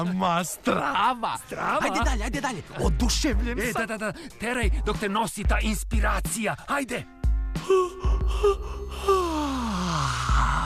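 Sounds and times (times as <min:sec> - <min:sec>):
speech: 0:00.0 - 0:10.6
human yawn with downward sliding moan: 0:07.6 - 0:10.6.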